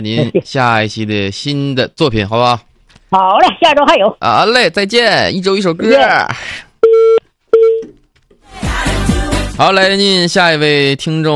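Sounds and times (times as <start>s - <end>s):
speech: 0.0s - 6.7s, 9.6s - 11.3s
telephone call connecting tones: 6.8s - 7.9s.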